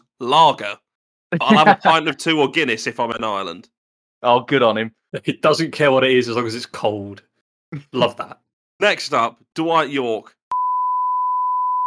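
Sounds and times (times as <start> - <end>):
speech: 0.2 - 10.4
laughter: 1.4 - 2.4, 5.2 - 5.7
electronic censor bleep tone over swear word: 10.5 - 11.8.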